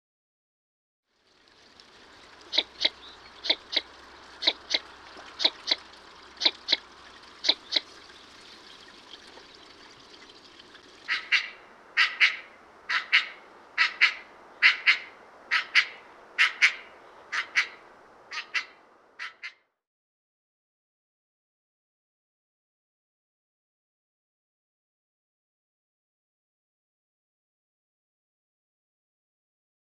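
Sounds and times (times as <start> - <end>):
northern shoveler duck calling: 2.5 - 7.9, 11.1 - 19.6.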